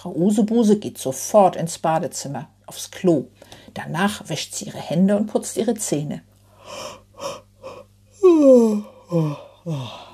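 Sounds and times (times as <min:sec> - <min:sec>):
speech: 0:00.0 - 0:07.4, 0:08.2 - 0:10.1
woman's short falling sighs: 0:06.6 - 0:10.1
woman yawning: 0:06.7 - 0:10.1.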